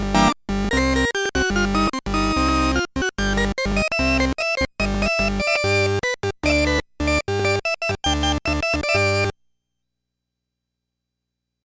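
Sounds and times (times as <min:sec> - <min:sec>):
combo organ: 0:00.1 - 0:09.3.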